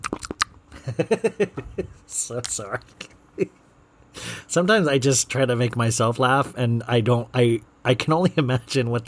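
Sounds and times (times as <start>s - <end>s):
wet chewing and crunching mouth noises: 0.0s - 0.6s
speech: 0.9s - 3.6s, 4.5s - 9.0s.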